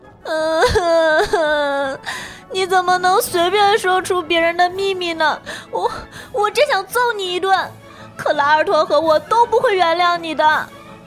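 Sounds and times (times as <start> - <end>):
girl crying: 0.2 - 2.6, 5.6 - 6.1
speech: 0.3 - 10.8.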